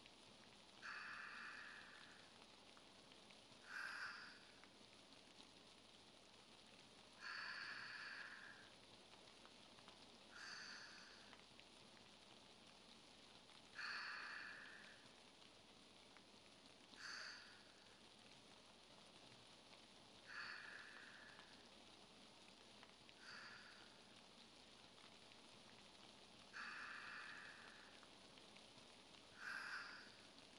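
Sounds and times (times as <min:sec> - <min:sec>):
person breathing in sleep: 0:00.8 - 0:02.4, 0:03.6 - 0:04.6, 0:07.2 - 0:08.7, 0:10.3 - 0:11.4, 0:13.7 - 0:15.1, 0:17.0 - 0:17.8, 0:20.3 - 0:21.7, 0:23.2 - 0:24.1, 0:26.5 - 0:28.1, 0:29.3 - 0:30.3.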